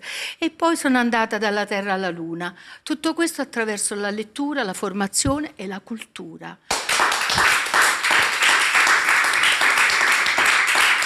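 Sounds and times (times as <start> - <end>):
speech: 0.4 - 6.8
studio audience applause: 6.7 - 11.0.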